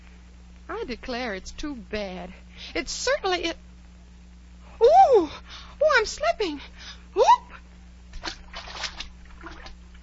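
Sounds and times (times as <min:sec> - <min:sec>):
low steady hum: 0:00.0 - 0:10.0
speech: 0:00.8 - 0:03.7, 0:04.8 - 0:07.4
splashing in a pool of salt water: 0:08.2 - 0:10.0.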